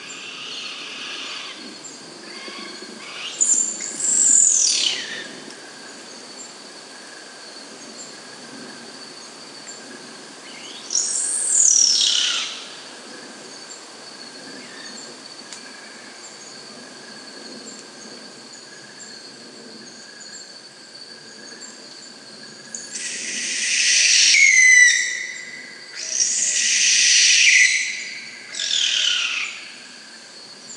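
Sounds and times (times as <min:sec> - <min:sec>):
sooty owl descending screeches: 0:00.0 - 0:01.6, 0:02.3 - 0:03.6, 0:22.9 - 0:29.7
high drone of insects at night: 0:00.0 - 0:30.7.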